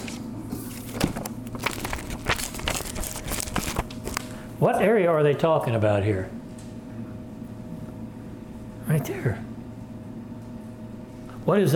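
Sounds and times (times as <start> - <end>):
paper crinkling and crumpling as it is removed: 0.6 - 4.4
speech: 4.6 - 6.4, 8.9 - 9.5, 11.5 - 11.7.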